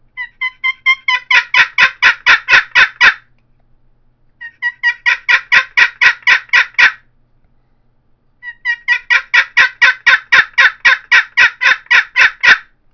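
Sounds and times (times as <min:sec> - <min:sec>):
cedar and maple boat paddle turkey call yelps: 0:00.2 - 0:03.3, 0:04.4 - 0:07.0, 0:08.4 - 0:12.7.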